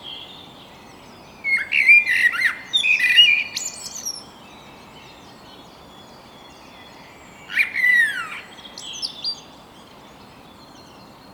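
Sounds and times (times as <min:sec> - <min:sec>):
Eurasian blackbird Turdus merula singing a fluty warble: 0:00.0 - 0:05.2, 0:06.0 - 0:09.5.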